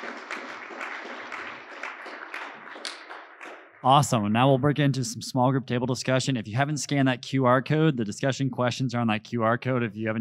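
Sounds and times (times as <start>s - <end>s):
audience applause, many hands clapping: 0.0s - 3.8s
speech: 3.8s - 10.1s.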